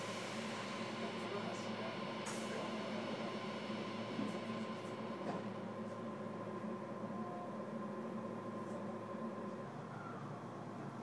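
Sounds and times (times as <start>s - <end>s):
subway train rumbling with mechanical hum and whine: 0.0s - 11.0s.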